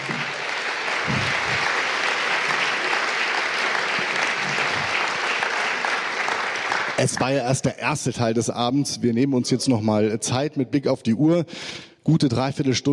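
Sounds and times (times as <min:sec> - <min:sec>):
audience clapping after a lecture: 0:00.0 - 0:07.6
speech: 0:07.0 - 0:12.9.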